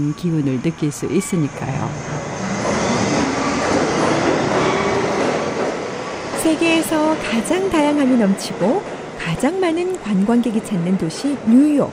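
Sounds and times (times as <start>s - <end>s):
speech: 0.0s - 2.2s, 6.4s - 11.9s
New York City subway train passing: 0.0s - 11.9s.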